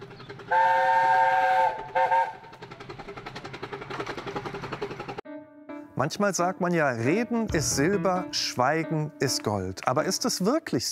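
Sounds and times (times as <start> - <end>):
train wheels clattering over the track: 0.0 - 5.2
speech: 0.5 - 1.4, 6.0 - 10.9
train whistle blasts: 0.5 - 2.4.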